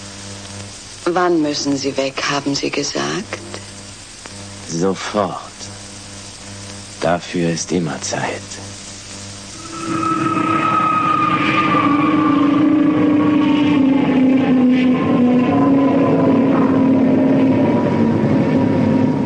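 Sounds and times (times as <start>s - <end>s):
speech: 1.1s - 3.6s, 4.7s - 5.5s, 7.0s - 8.7s, 9.9s - 10.4s
airliner landing in Kingston, Jamaica: 9.6s - 19.2s.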